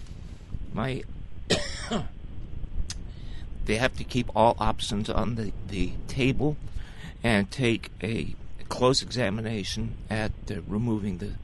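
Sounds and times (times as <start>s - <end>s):
faint noise: 0.0s - 11.4s
speech: 0.8s - 1.2s, 1.9s - 2.2s, 3.7s - 11.4s
person clearing an itchy throat: 1.5s - 2.2s.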